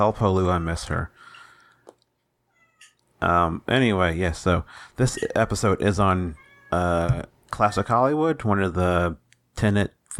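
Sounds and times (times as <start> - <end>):
speech: 0.0 - 1.3, 3.2 - 10.1
cat giving short high-pitched meows: 2.5 - 3.0, 6.3 - 6.9.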